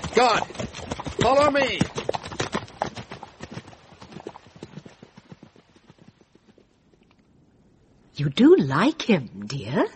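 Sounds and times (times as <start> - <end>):
hoofbeats of horses galloping with riders: 0.0 - 7.3
speech: 0.2 - 2.0, 8.2 - 9.9.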